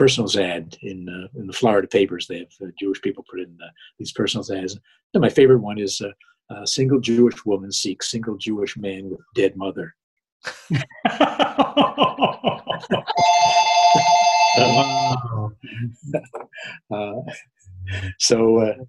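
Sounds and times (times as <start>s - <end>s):
speech: 0.0s - 18.8s
rhythmic laughter: 10.5s - 18.2s
phone ringing with a steady electronic trill: 13.1s - 15.2s.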